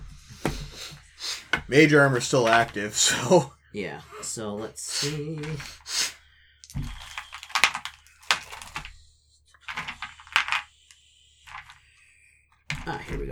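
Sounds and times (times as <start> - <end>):
dice box opening: 1.5 - 3.4, 6.8 - 9.0, 9.6 - 11.8
speech: 1.7 - 6.0.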